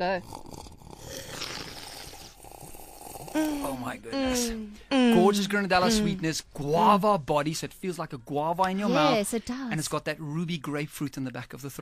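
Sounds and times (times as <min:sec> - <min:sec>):
speech: 0:00.0 - 0:00.5, 0:03.4 - 0:11.8
airy slurp of coffee drawn in while tasting: 0:00.0 - 0:03.4.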